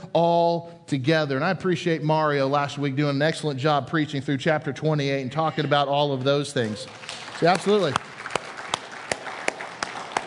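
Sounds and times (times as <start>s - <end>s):
speech: 0.1s - 8.0s
audience clapping: 6.2s - 10.2s.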